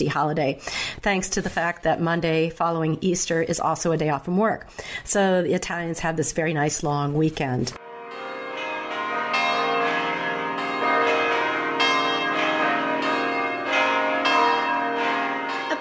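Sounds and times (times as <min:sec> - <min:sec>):
speech: 0:00.0 - 0:07.8
church bells pealing: 0:07.8 - 0:15.7.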